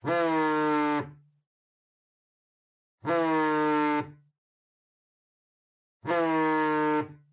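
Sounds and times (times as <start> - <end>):
cell phone vibrating on a table: 0.0 - 1.2, 3.0 - 4.3, 6.0 - 7.3.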